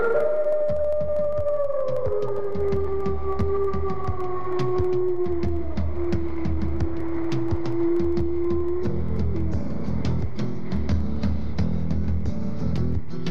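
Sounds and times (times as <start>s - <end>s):
canines howling in overlapping wavering voices: 0.0s - 10.4s
steady low rumble: 0.2s - 13.1s.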